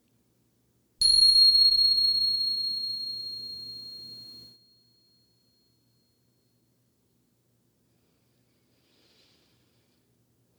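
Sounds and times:
meditation bell ringing: 1.0s - 4.6s.

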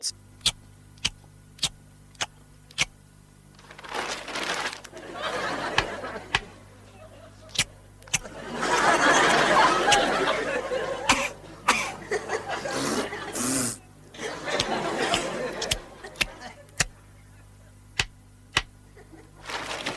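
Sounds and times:
faint steady hum: 0.0s - 19.9s
laughter: 4.9s - 17.9s, 18.8s - 19.4s
coughs and sneezes arranged as music: 11.0s - 12.0s.

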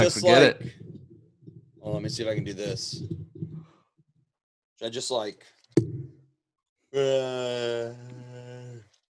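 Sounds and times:
speech: 0.0s - 0.8s, 1.8s - 3.2s, 4.8s - 5.9s, 6.9s - 8.3s
quiet yawn: 7.0s - 9.0s.

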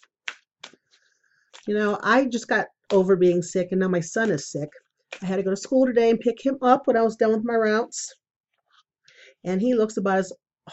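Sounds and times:
deck of tarot cards being shuffled: 0.0s - 1.7s
speech: 1.6s - 8.2s, 9.4s - 10.7s.

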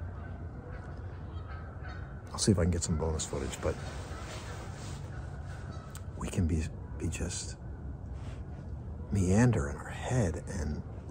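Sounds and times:
geese honking after landing on water: 0.0s - 6.4s
outdoor background: 0.0s - 11.0s
speech: 2.3s - 4.1s, 6.4s - 7.6s, 9.1s - 11.0s.

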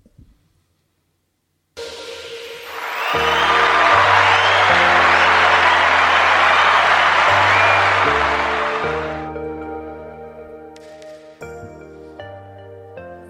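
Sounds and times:
bright musical jingle with a bouncy bass line: 1.8s - 10.3s
loud dense applause: 2.4s - 9.3s.

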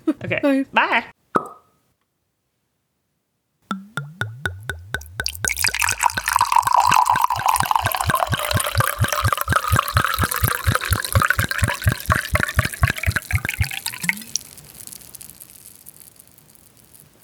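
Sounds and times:
speech: 0.2s - 1.2s
tap on a wine bottle: 3.7s - 14.4s
wine poured from a bottle into a glass: 3.7s - 16.9s.

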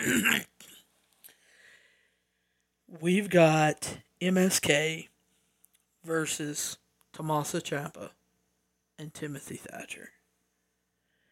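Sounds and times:
speech: 0.0s - 0.5s, 2.9s - 5.1s, 6.0s - 8.2s, 9.0s - 10.2s
person coughing: 0.0s - 0.9s.

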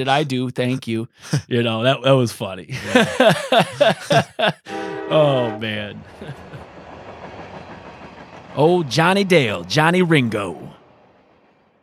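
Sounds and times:
speech: 0.0s - 6.5s, 8.6s - 10.6s
laughter: 0.0s - 6.6s
rattling clatter of rail cars: 2.9s - 11.8s
train rolling past on tracks: 3.0s - 11.8s.

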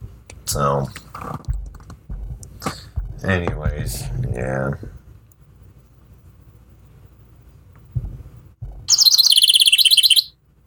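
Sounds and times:
speech: 0.5s - 1.5s, 3.2s - 5.0s
birds chirping in a fast high-pitched burst: 8.9s - 10.3s.

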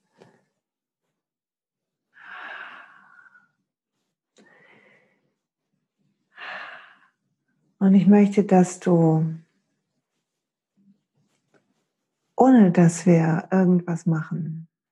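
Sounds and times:
slow deep breathing during guided meditation: 2.1s - 3.7s, 4.4s - 5.4s, 6.3s - 7.2s
speech: 7.8s - 9.4s, 12.5s - 14.7s.

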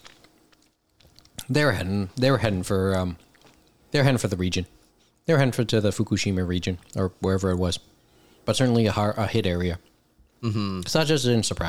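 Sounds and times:
moist chewing on a donut: 0.0s - 3.9s, 6.7s - 7.1s
speech: 1.5s - 3.3s, 3.9s - 7.9s, 8.5s - 11.6s.

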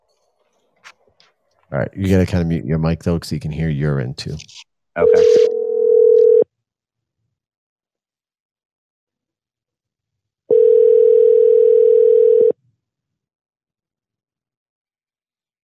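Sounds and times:
speech: 1.7s - 5.6s
telephone line ringback tone while calling a number back: 5.0s - 6.4s, 10.5s - 12.6s.

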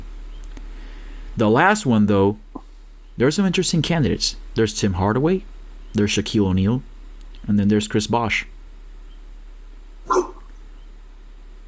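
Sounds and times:
speech: 1.4s - 2.4s, 3.2s - 8.6s
dog barking: 10.1s - 10.6s.

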